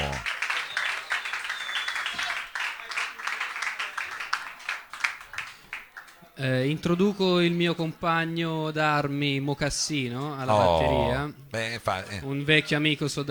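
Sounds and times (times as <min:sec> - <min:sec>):
scattered voices and cheers: 0:00.0 - 0:00.3, 0:10.5 - 0:11.2
audience applauding for a band: 0:00.0 - 0:05.8
speech: 0:06.4 - 0:13.2.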